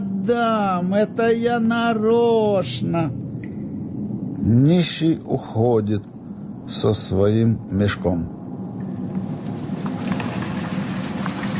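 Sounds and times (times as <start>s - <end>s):
speech: 0.2s - 3.3s, 4.4s - 6.1s, 6.7s - 8.4s
deep low thunder rumbling: 3.0s - 11.5s
steady dense rainfall: 8.8s - 11.5s.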